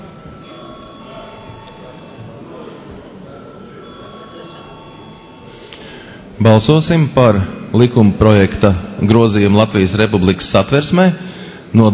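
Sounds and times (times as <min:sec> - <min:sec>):
parliament chamber electric bell ringing before a vote: 0:00.0 - 0:06.3
low murmur of a large room full of people: 0:00.0 - 0:11.9
shuffling of a large room full of people: 0:00.1 - 0:06.2
speech: 0:06.4 - 0:11.9.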